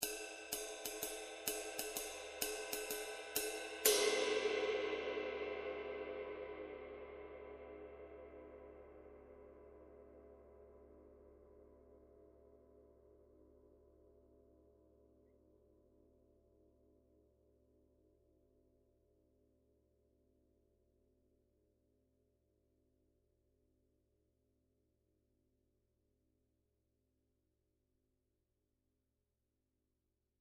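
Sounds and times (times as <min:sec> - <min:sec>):
22in custom high definition ride cymbal: 0:00.0 - 0:07.4.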